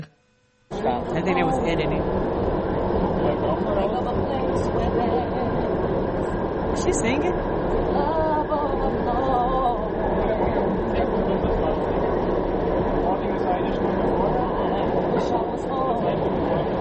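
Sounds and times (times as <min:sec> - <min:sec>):
indistinct passenger chatter: 0:00.7 - 0:16.7
subway train rumbling in motion: 0:00.7 - 0:16.7
speech: 0:00.8 - 0:02.3, 0:03.0 - 0:05.6, 0:06.3 - 0:09.5.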